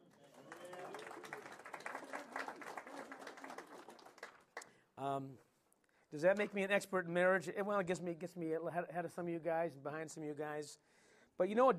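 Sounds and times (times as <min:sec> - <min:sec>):
crowd applauding: 0:00.0 - 0:04.7
speech: 0:05.0 - 0:05.5, 0:06.1 - 0:11.7.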